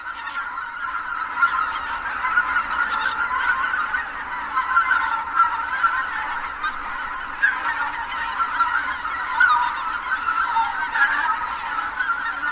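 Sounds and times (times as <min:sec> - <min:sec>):
Greater White-fronted Goose flock giving yelping flight calls at evening roost: 0:00.0 - 0:12.5.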